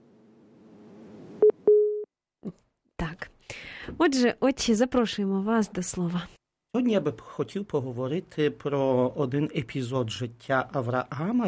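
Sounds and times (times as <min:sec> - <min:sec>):
telephone line tone from incoming call: 0:01.4 - 0:02.1
speech: 0:04.0 - 0:11.4.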